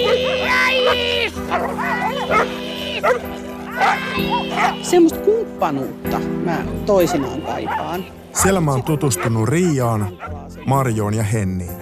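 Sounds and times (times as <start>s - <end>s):
dogs whining: 0.0s - 5.0s, 6.9s - 10.5s
several dogs barking and yipping at a dog park: 0.0s - 5.2s, 5.9s - 10.8s
speech: 0.9s - 11.8s.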